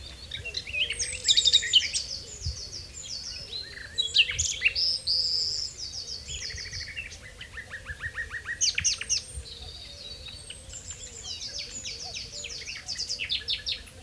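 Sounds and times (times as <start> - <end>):
Common nightingale Luscinia megarhynchos song: 0.0 - 14.0
low wavering bird calls: 0.0 - 14.0.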